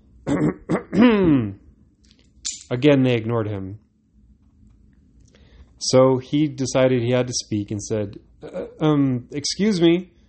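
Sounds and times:
voice imitating throat clearing: 0:00.2 - 0:01.6, 0:08.4 - 0:08.9
speech: 0:00.4 - 0:01.6, 0:02.7 - 0:03.8, 0:05.8 - 0:10.2.

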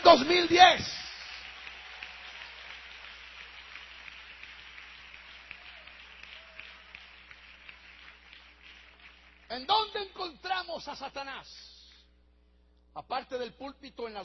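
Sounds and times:
church audience applauding: 0:00.0 - 0:09.6
speech: 0:00.1 - 0:01.0, 0:09.5 - 0:11.7, 0:13.0 - 0:14.2.

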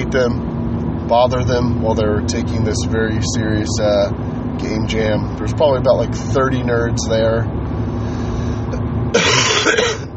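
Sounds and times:
low steady rumble: 0:00.0 - 0:10.1
speech: 0:00.1 - 0:00.5, 0:01.1 - 0:07.6, 0:09.1 - 0:10.0
harsh raspy hacking cough: 0:09.1 - 0:10.1.

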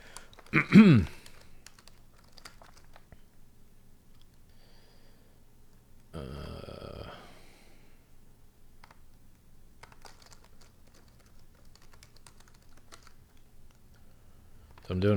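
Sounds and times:
typing on a computer keyboard: 0:00.0 - 0:03.3, 0:08.8 - 0:09.2, 0:09.8 - 0:14.0, 0:14.6 - 0:15.0
steady low hum: 0:00.0 - 0:15.1
speech: 0:00.5 - 0:01.2.

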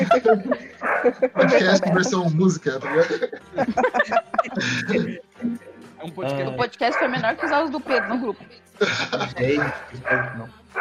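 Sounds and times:
laughter: 0:00.0 - 0:10.4
speech: 0:00.2 - 0:10.8
dog barking and yipping: 0:00.8 - 0:01.8, 0:02.8 - 0:03.2, 0:06.9 - 0:08.2, 0:09.5 - 0:10.8.

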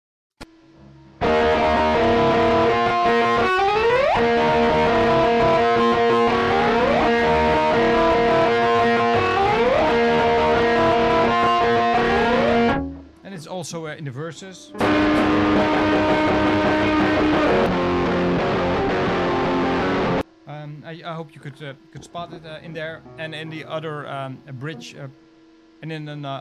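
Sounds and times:
loud distorted electric guitar through an amp with slapback echo and flanger: 0:00.4 - 0:13.2, 0:14.7 - 0:20.2
speech: 0:13.7 - 0:17.8, 0:21.0 - 0:25.2, 0:25.8 - 0:26.3.

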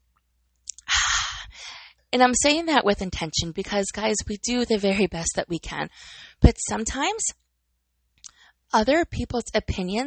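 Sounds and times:
soft mouth clicks: 0:00.6 - 0:00.9
speech: 0:02.1 - 0:07.4, 0:08.7 - 0:10.0.

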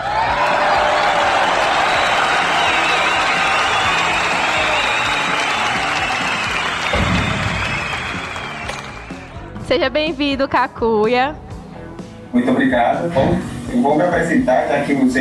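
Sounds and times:
audience whoops: 0:00.0 - 0:09.1
live audience clapping and cheering for guest: 0:00.0 - 0:09.5
speech: 0:09.7 - 0:11.4, 0:12.3 - 0:15.1.

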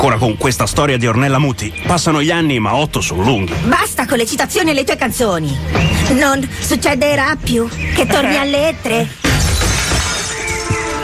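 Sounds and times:
speech: 0:00.0 - 0:09.3
window pane smashing: 0:09.2 - 0:10.8
glass fragments tinkling as they scatter: 0:09.4 - 0:10.7.

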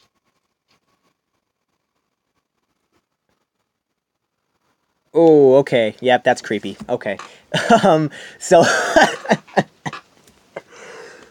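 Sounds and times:
speech: 0:05.1 - 0:09.7
laughing cough: 0:07.5 - 0:08.0, 0:08.6 - 0:10.0
long breathy exhale: 0:08.1 - 0:08.4, 0:10.6 - 0:11.2.

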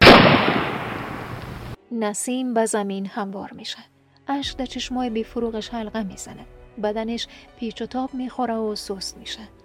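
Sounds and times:
single machine gun gunshot with echo: 0:00.0 - 0:01.7
speech: 0:01.9 - 0:09.6.

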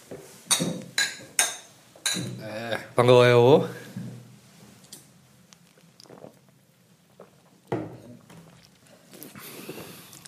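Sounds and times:
glasses of ale clinking in a toast: 0:00.5 - 0:02.4
speech: 0:02.5 - 0:03.8.

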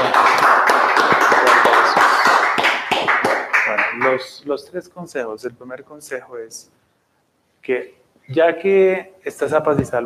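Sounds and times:
congregation clapping in steady dense applause: 0:00.0 - 0:04.3
speech: 0:04.2 - 0:06.8, 0:07.6 - 0:10.0.

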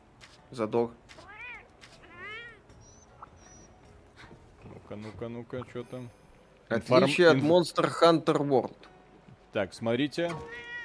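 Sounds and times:
speech: 0:00.5 - 0:01.2, 0:04.9 - 0:08.9, 0:09.5 - 0:10.7
cat meowing in a video game: 0:01.2 - 0:03.7, 0:10.4 - 0:10.8.

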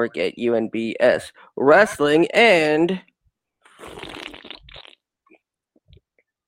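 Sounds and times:
speech: 0:00.0 - 0:03.1
loud airy slurp of tea: 0:03.7 - 0:05.0
person swallowing: 0:03.7 - 0:05.0
small wet mouth clicks: 0:03.7 - 0:05.0.

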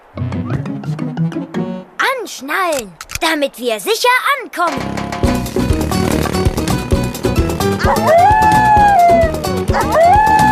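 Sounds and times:
busy music: 0:00.0 - 0:02.0, 0:04.7 - 0:10.5
speech: 0:02.3 - 0:05.6
several coyotes howling and yipping: 0:07.8 - 0:10.5.

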